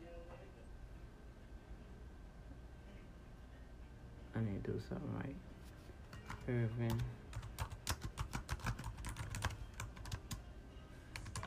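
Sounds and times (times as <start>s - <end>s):
low steady hum: 0.0s - 11.4s
speech: 4.4s - 5.6s, 6.4s - 7.2s
typing on a computer keyboard: 6.1s - 10.4s, 11.2s - 11.4s.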